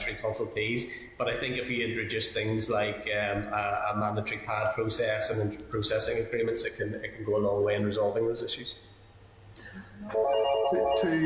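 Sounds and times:
speech: 0.1s - 8.9s, 9.7s - 11.2s
phone ringtone with melodic beeps: 10.0s - 11.2s.

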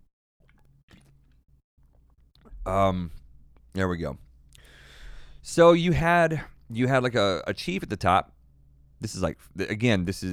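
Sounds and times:
wet sipping and swallowing of a drink: 0.4s - 3.7s
speech: 2.7s - 4.2s, 5.4s - 8.3s, 9.0s - 10.3s.

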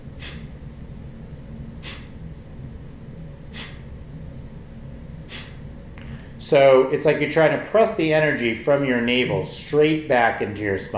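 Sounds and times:
low constant hum: 0.0s - 10.9s
forceful exhales snapped out from the navel: 0.2s - 0.5s, 1.8s - 2.2s, 3.5s - 3.9s, 5.3s - 6.4s
speech: 6.5s - 10.9s.

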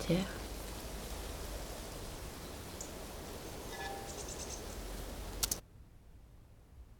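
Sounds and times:
speech: 0.0s - 0.4s
wind gusting through reeds and grass: 0.0s - 5.6s
click: 5.4s - 5.6s.

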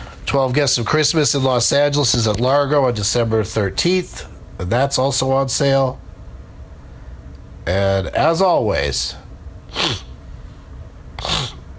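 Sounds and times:
speech: 0.3s - 6.0s, 7.7s - 10.0s
person sniffling: 9.7s - 10.2s, 11.2s - 11.6s.

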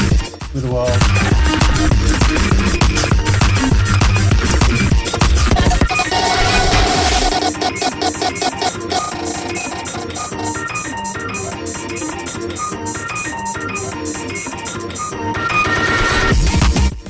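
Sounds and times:
breakcore music with chopped drum breaks and glitchy layers: 0.0s - 17.0s
speech: 0.5s - 2.5s.

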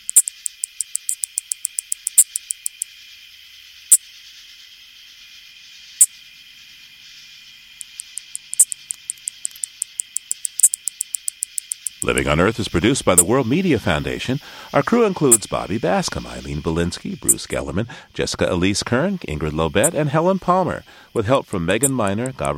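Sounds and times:
two male anglewing katydids calling: 0.0s - 2.9s, 7.8s - 22.5s
high insect hiss: 0.0s - 22.5s
speech: 12.0s - 22.5s.

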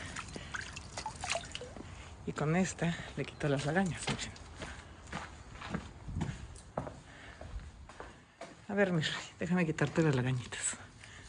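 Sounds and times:
water dripping from a small wet sponge: 0.0s - 1.8s
speech: 2.3s - 4.4s, 8.7s - 10.6s.

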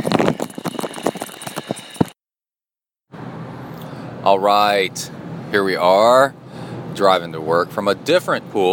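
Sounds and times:
device rustling inside a plastic zip bag: 0.0s - 2.1s
speech: 4.2s - 6.4s, 7.0s - 8.7s.

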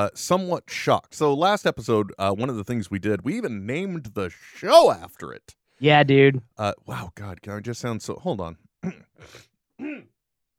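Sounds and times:
speech: 0.0s - 10.1s
throat clearing: 8.8s - 10.2s.

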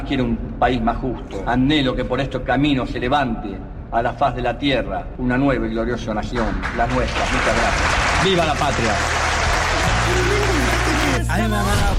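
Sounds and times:
speech: 0.1s - 9.3s, 11.4s - 11.9s
large crowd applauding after a speech: 6.4s - 11.4s
voices cheering: 7.9s - 11.4s.

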